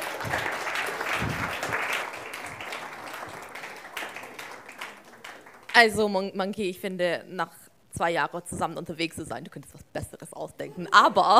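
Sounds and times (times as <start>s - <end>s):
audience applauding: 0.0s - 6.0s
speech: 5.8s - 11.3s.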